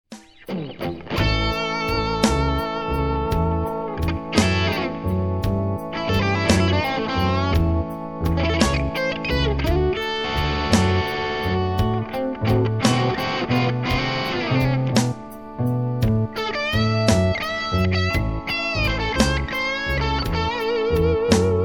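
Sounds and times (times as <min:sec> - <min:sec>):
tonal center blues guitar: 0:00.1 - 0:21.6.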